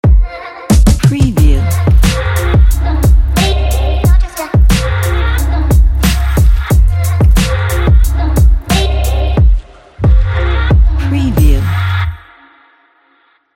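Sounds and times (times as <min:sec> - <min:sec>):
background hip hop ident music: 0:01.0 - 0:12.2.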